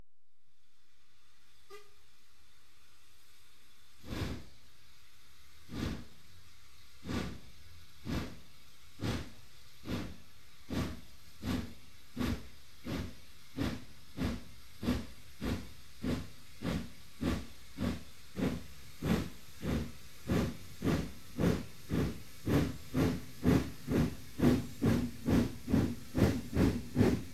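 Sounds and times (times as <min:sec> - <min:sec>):
train starting up a steep grade: 0:01.0 - 0:27.3.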